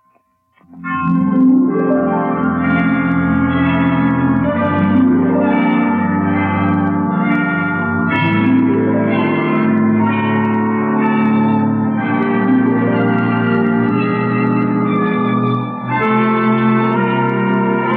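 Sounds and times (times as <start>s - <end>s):
hospital clock chimes striking: 0.0s - 17.9s.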